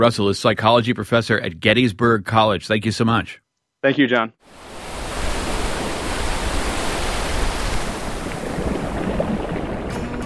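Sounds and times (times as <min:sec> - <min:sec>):
speech: 0:00.0 - 0:04.7
ocean surf washing against a shore: 0:04.4 - 0:09.9.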